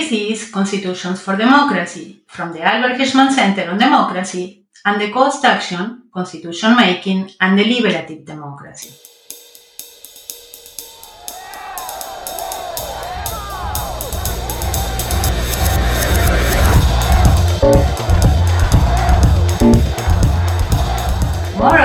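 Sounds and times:
speech: 0.0s - 9.1s
rioting crowd shouting during violent unrest: 10.8s - 21.8s.

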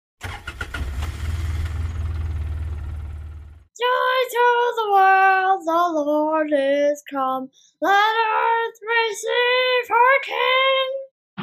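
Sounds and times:
vehicle engine rumble pulling a horse trailer: 0.5s - 3.7s
speech: 4.8s - 11.0s.

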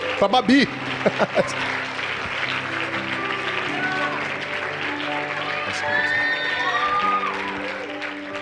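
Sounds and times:
crowd applauding loudly: 0.0s - 8.4s
speech: 0.2s - 1.8s
laughter: 0.8s - 1.8s
crowd cheers and whistles: 5.4s - 7.9s.

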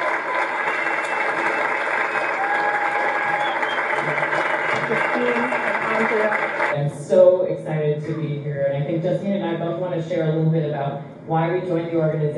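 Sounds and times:
cheers: 0.0s - 6.8s
large audience applause: 0.0s - 6.8s
speech: 6.9s - 12.3s.

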